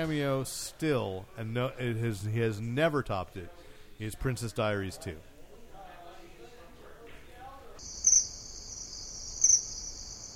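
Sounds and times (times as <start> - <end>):
speech: 0.0 - 5.3
high-pitched cricket trill: 7.8 - 10.3.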